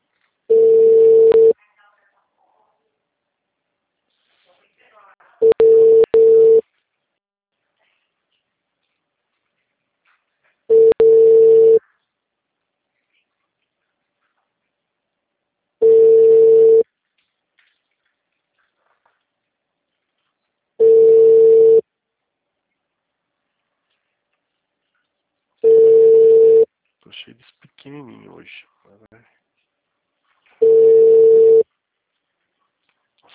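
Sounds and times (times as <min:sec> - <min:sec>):
telephone ringback tone of an unanswered call: 0:00.5 - 0:01.6, 0:05.4 - 0:06.6, 0:10.7 - 0:11.8, 0:15.8 - 0:16.8, 0:20.8 - 0:21.8, 0:25.6 - 0:26.7, 0:30.6 - 0:31.6
speech: 0:27.2 - 0:29.4.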